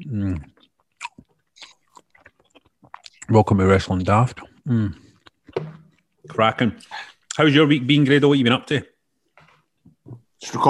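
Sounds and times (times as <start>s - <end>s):
speech: 0.1s - 0.5s, 3.3s - 5.0s, 6.4s - 8.9s, 10.5s - 10.6s
person chewing a sandwich: 0.4s - 3.3s, 4.4s - 6.3s.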